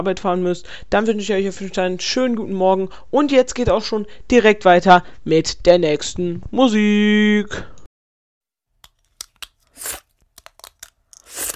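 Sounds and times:
speech: 0.0 - 7.7
wet plastic clicks and snaps of an Invisalign clear dental aligner pried out of the mouth: 8.8 - 9.6, 10.2 - 11.4.

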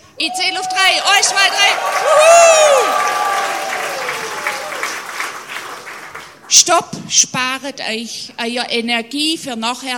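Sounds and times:
speech: 0.2 - 3.3, 6.5 - 9.9
high whooping cheer: 0.2 - 6.0
crowd applause: 0.3 - 6.5.

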